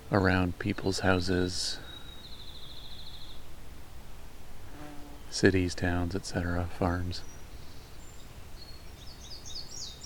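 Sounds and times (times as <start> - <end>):
steady wash of noise: 0.0 - 10.0
speech: 0.1 - 1.9, 5.3 - 7.4
field sparrow song: 0.8 - 3.6, 5.0 - 10.0.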